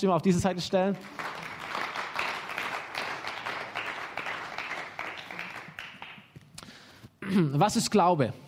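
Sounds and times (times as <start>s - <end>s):
speech: 0.0s - 1.5s, 7.3s - 8.4s
audience applause for a volunteer: 1.0s - 6.4s.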